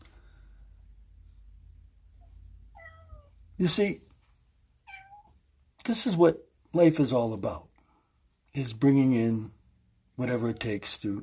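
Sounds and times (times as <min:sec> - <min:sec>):
cat meowing: 0:02.2 - 0:03.4, 0:04.8 - 0:05.4
speech: 0:03.6 - 0:04.1, 0:05.9 - 0:07.7, 0:08.5 - 0:09.6, 0:10.2 - 0:11.2.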